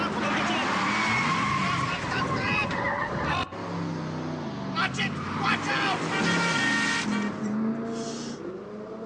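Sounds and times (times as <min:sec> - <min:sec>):
car tires squealing: 0:00.0 - 0:08.5
car engine roaring as the car is driven fast and recklessly: 0:00.0 - 0:09.0.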